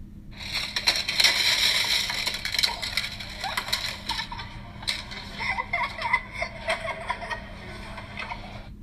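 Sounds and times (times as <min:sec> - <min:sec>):
transparent plastic shapes crashing onto a light box in a makerspace: 0:00.4 - 0:07.3
kids giggling: 0:02.0 - 0:08.7.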